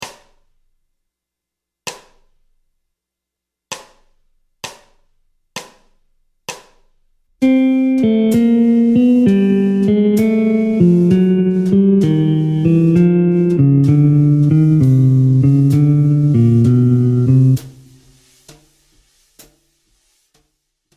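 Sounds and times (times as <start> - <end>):
jazz guitar playing descending bebop scale in C melodic minor: 7.4 - 18.1.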